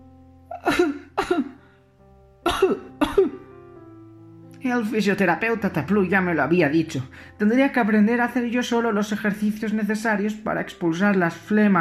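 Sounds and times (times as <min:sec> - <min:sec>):
harsh coughing: 0:00.6 - 0:01.6, 0:02.5 - 0:03.4
speech: 0:00.7 - 0:01.4, 0:04.7 - 0:11.7.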